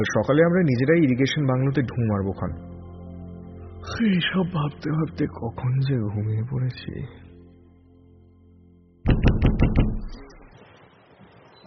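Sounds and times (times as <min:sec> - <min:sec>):
speech: 0:00.0 - 0:02.8, 0:03.8 - 0:07.2
knocking on a door: 0:09.1 - 0:10.2.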